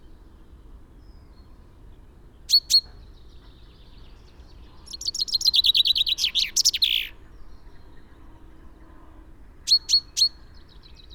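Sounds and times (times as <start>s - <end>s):
common chaffinch Fringilla coelebs rapid repeated chirps of a song phrase: 4.3s - 7.2s.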